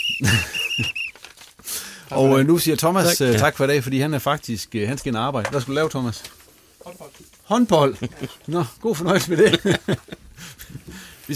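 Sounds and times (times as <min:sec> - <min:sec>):
laughter: 0:00.0 - 0:01.1, 0:07.8 - 0:10.9
shrill referee-style whistle blasts: 0:00.0 - 0:01.2
speech: 0:00.2 - 0:01.0, 0:02.1 - 0:06.4, 0:07.5 - 0:10.2.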